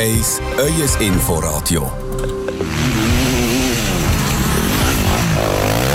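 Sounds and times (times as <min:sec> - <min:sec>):
speech: 0:00.0 - 0:02.9
several motocross motorcycle engines revving loudly: 0:02.5 - 0:05.9.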